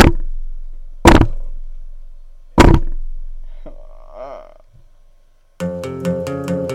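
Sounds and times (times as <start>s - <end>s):
person banging their head against a table: 2.6s - 3.0s
music: 5.6s - 6.7s.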